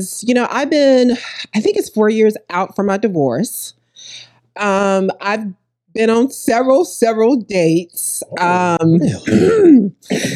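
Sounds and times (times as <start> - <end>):
speech: 0.0 - 10.3
person clearing throat: 9.1 - 10.3.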